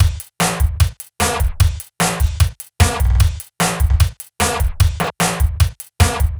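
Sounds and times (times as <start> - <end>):
grunged drum break: 0.0 - 6.3.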